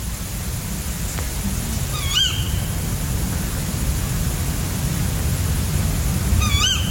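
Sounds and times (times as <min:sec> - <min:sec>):
steady rumble of wind or rain noise: 0:00.0 - 0:06.8
male tawny owl hoarse wavering calls: 0:01.9 - 0:02.6.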